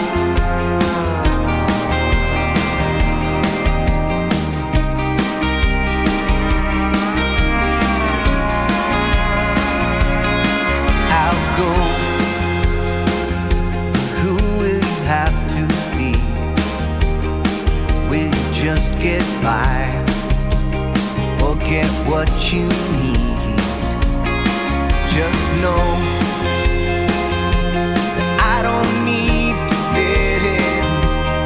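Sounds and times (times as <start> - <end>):
recorded full-band song with a steady beat: 0.0 - 31.4.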